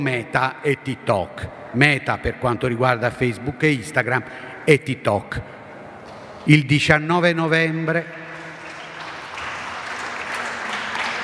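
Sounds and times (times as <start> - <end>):
speech: 0.0 - 5.6, 6.4 - 8.2
audience applause during a public speech: 8.3 - 11.2.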